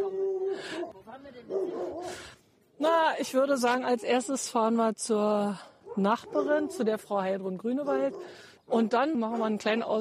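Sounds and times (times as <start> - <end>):
dog barking announcing the arrival of visitors: 0.0 - 2.2, 5.8 - 7.0, 7.8 - 9.7
speech: 1.2 - 9.9.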